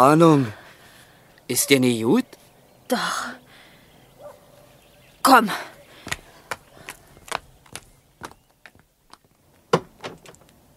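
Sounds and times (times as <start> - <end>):
speech: 0.0 - 0.6, 1.5 - 3.4, 5.2 - 5.7
door opening with latch and frame clicks: 9.7 - 10.5.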